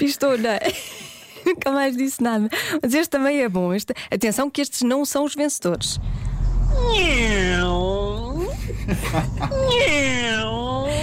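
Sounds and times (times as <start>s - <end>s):
speech: 0.0s - 8.1s, 8.9s - 10.6s
steady low hum: 5.8s - 11.0s
human voice imitating a kitten's meow: 6.7s - 8.4s, 9.5s - 10.9s
laughter: 8.4s - 10.1s.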